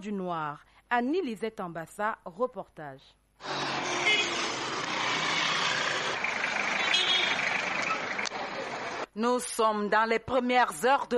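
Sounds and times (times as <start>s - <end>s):
speech: 0.0s - 4.3s, 9.2s - 11.1s
morning road traffic with cars, motorbikes and trucks: 3.4s - 9.2s.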